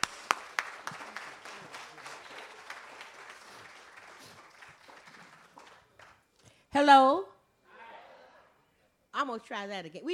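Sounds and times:
audience clapping: 0.0s - 6.4s
speech: 6.8s - 7.3s, 9.3s - 10.1s.

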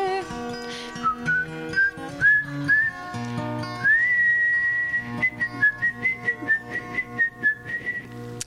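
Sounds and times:
soft rhythmic accompaniment: 0.0s - 8.4s
person whistling a melodic tune: 1.0s - 3.0s, 3.8s - 8.2s.

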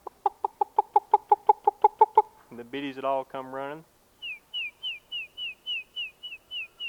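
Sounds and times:
hen clucking: 0.0s - 2.4s
speech: 2.7s - 3.9s.

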